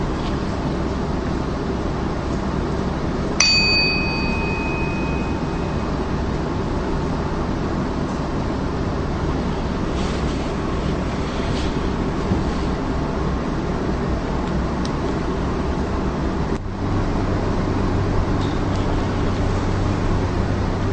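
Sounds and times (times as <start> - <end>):
steady low hum: 0.0 - 20.9
meditation bell struck to begin a seated meditation: 3.4 - 6.5.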